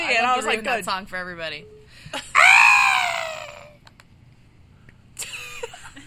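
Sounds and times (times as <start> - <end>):
speech: 0.2 - 2.6
person screaming in surprise: 2.3 - 3.8
strained vocal outburst: 2.3 - 3.8.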